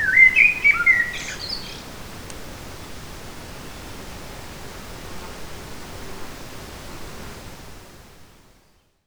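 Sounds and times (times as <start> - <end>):
Eurasian blackbird singing fluting warbled notes in a forest: 0.0 - 1.9
background hiss: 0.0 - 9.0.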